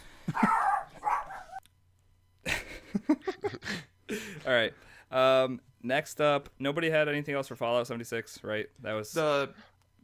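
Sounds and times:
dog barking sharp yappy barks: 0.3s - 1.6s
speech: 4.5s - 10.0s.

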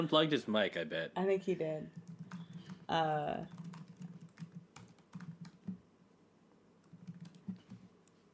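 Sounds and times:
speech: 0.0s - 2.0s, 2.9s - 3.6s
typing on a computer keyboard: 1.9s - 5.8s, 6.8s - 8.2s.

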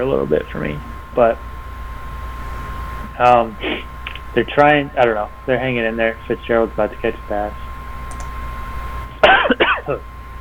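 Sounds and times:
speech: 0.0s - 1.5s, 3.2s - 7.6s, 9.9s - 10.1s
person coughing: 9.2s - 10.0s.

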